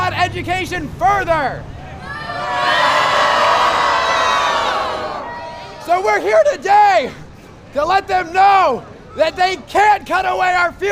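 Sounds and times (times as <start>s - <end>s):
speech: 0.3s - 2.8s, 5.8s - 10.9s
large crowd of students cheering and shouting at a protest in Alaska: 1.8s - 7.0s.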